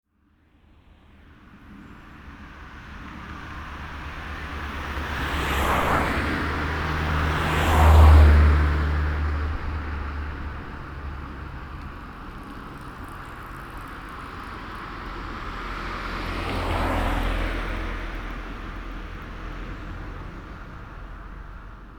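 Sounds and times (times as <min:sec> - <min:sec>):
cars in Brevnov: 0:00.6 - 0:21.9
bike in a field in Brevnov: 0:01.3 - 0:21.9.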